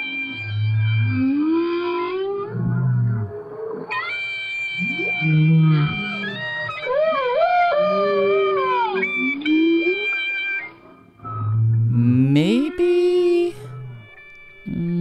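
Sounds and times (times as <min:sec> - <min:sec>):
whale singing moaning sweeping calls: 0:00.0 - 0:14.9.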